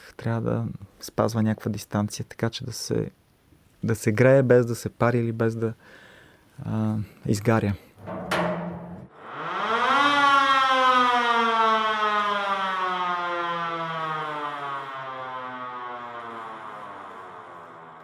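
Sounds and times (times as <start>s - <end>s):
speech: 0.2s - 3.2s, 3.8s - 6.0s, 6.6s - 8.4s
old Austrian mechanical fire alarm siren from 1920s wailing: 9.1s - 18.0s.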